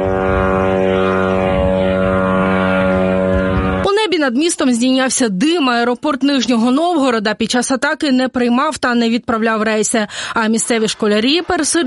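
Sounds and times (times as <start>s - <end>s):
attack drone propeller engine droning overhead: 0.0s - 4.2s
speech: 4.3s - 11.8s.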